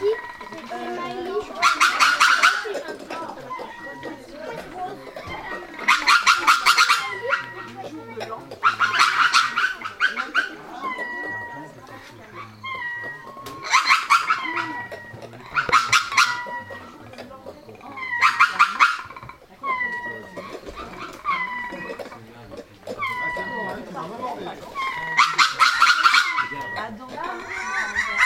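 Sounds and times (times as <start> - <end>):
lemur calls with harsh cries and whining mews: 0.0 - 28.2.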